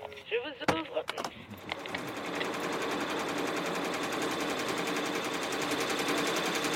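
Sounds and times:
voice: 0.0 - 1.4
multi-head embroidery machine running: 1.6 - 6.7.

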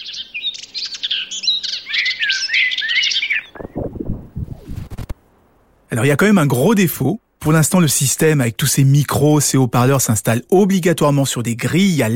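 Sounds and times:
small birds chirping outdoors in a twittering chorus: 0.0 - 5.0
speech: 5.9 - 12.1.

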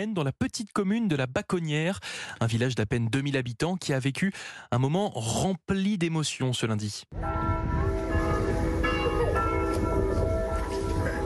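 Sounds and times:
speech: 0.0 - 7.8
church bells ringing: 7.2 - 11.2.

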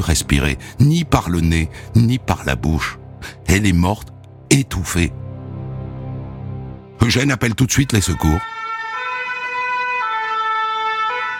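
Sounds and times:
speech: 0.0 - 5.2, 7.0 - 8.5
fire engine two-tone siren wailing: 7.7 - 11.3.

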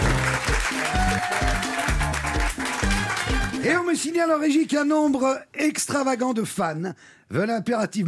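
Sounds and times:
bouncy rhythmic music sting with punchy bass notes: 0.0 - 3.6
loud studio-style applause: 0.0 - 3.8
speech: 3.6 - 8.0.

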